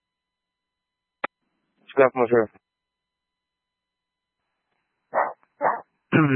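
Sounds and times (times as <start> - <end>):
speech: 2.0 - 2.6, 6.2 - 6.3
dog giving a short sharp bark: 5.1 - 5.8.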